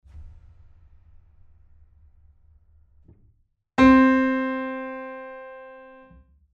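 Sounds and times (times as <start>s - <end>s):
Boesendorfer 290 grand piano effects: 3.8s - 6.1s.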